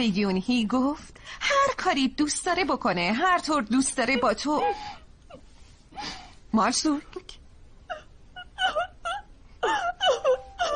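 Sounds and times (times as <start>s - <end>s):
speech: 0.0s - 5.4s, 6.0s - 7.4s
girl crying with whimpering wails and sobs: 4.0s - 5.4s, 7.9s - 10.7s.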